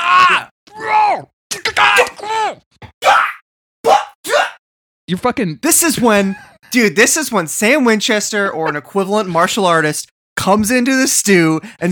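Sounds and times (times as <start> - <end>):
person wordless angry screaming and groaning: 0.0 - 4.6
speech: 5.1 - 11.9.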